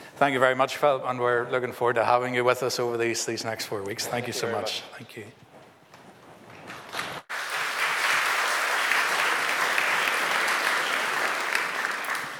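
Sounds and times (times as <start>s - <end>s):
speech: 0.2s - 5.4s
audience applauding: 7.3s - 12.3s.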